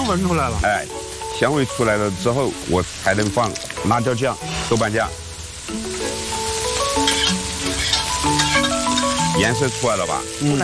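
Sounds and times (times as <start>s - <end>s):
pickled radish sizzling and crackling while stir-fried in a hot wok: 0.0s - 10.6s
soft melodic tune: 0.0s - 10.6s
speech: 0.1s - 6.3s, 9.4s - 10.6s
spatula scraping a wok: 6.8s - 9.4s.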